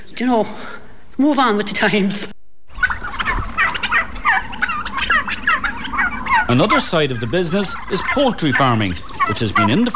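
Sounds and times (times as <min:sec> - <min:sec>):
speech: 0:00.2 - 0:02.4, 0:06.5 - 0:09.9
flock of turkeys gobbling in a field: 0:02.7 - 0:09.9.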